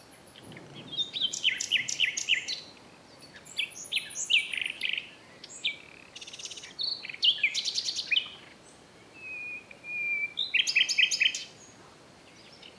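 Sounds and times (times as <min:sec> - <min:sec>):
common nightingale song: 0:00.0 - 0:12.7.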